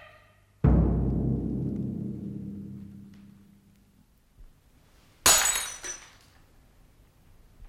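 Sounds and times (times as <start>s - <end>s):
heavy crash: 0.6s - 3.7s
drinking glass dropped on the floor and shattering: 5.2s - 6.3s.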